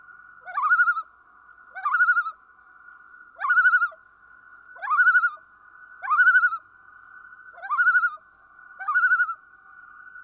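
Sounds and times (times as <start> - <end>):
common loon tremulous calls: 0.4 - 1.1, 1.7 - 2.4, 3.4 - 4.0, 4.8 - 5.4, 6.0 - 6.7, 7.5 - 8.2, 8.8 - 9.4.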